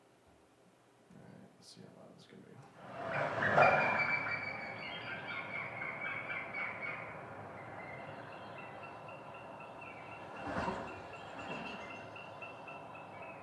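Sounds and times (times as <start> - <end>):
ducks calling: 3.0 - 13.4.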